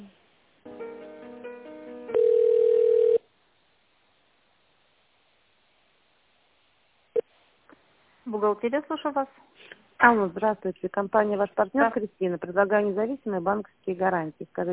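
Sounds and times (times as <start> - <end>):
telephone tones as an office call is transferred: 2.1 - 3.2
speech: 8.3 - 14.7.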